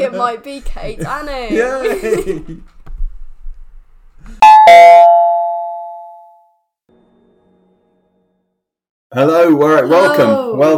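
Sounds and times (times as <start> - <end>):
speech: 0.0 - 2.8, 9.2 - 10.7
laughter: 1.6 - 2.7
two-tone doorbell chime: 4.4 - 6.6.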